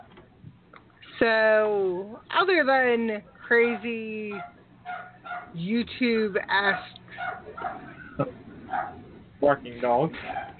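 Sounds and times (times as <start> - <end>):
speech: 1.2 - 4.6, 5.5 - 10.5
dogs barking: 3.6 - 5.6, 6.7 - 9.3, 10.1 - 10.5.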